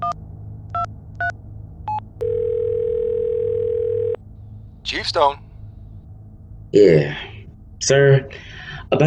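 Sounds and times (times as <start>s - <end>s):
low hum: 0.0s - 9.0s
steady telephone tone: 1.9s - 4.2s
speech: 5.0s - 5.4s, 6.7s - 9.0s.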